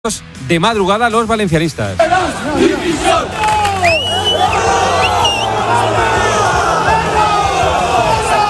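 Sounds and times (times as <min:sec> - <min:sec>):
speech: 0:00.0 - 0:03.6
large crowd of football fans shouting and yelling insults: 0:02.0 - 0:08.4.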